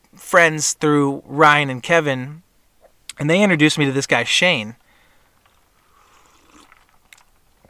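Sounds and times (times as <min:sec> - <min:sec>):
speech: 0:00.2 - 0:02.4, 0:03.2 - 0:04.8
person sipping a drink: 0:05.0 - 0:07.6
wet mouth clicks: 0:06.0 - 0:07.3.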